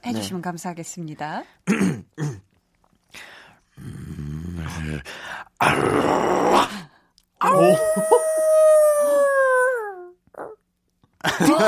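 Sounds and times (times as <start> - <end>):
speech: 0.0 - 2.4, 4.9 - 6.6, 7.5 - 8.3
person imitating an angry wolf howl: 5.7 - 6.7, 7.4 - 10.6
laughter: 11.2 - 11.6.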